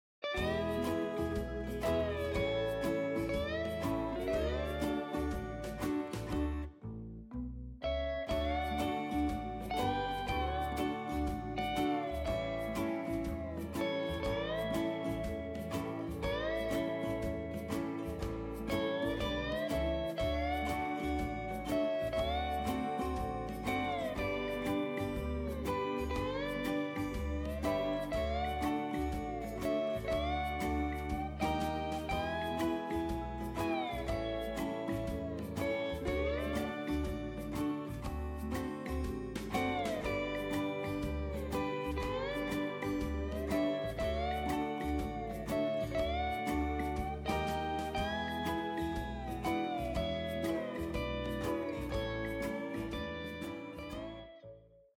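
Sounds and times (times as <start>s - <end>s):
Hawaii background music: 0.2s - 6.8s, 7.8s - 54.3s.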